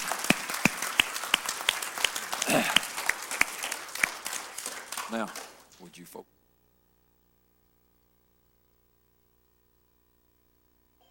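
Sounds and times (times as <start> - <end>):
audience in a church applauding: 0.0 - 6.2
speech: 2.5 - 2.9, 5.1 - 6.4.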